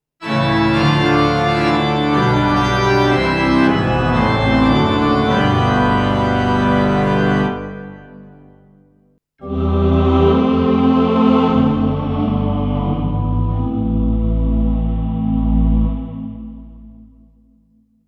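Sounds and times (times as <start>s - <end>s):
church sound on keyboard: 0.2s - 8.8s, 9.4s - 17.4s.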